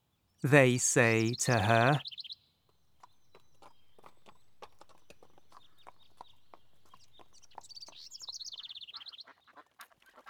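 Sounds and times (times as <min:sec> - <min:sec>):
speech: 0:00.4 - 0:02.2
horse hooves clip-clopping at a walking pace: 0:03.0 - 0:08.7.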